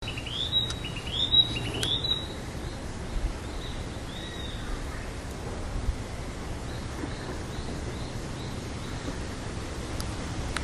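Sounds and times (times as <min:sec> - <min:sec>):
narcissus flycatcher whistled song: 0:00.0 - 0:02.4
steady background hiss: 0:00.0 - 0:10.6.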